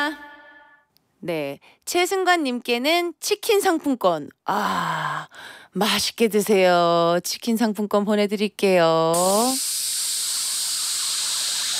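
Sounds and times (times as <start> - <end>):
speech: 1.2 - 10.0
person imitating frying sizzle with their mouth: 9.2 - 11.7.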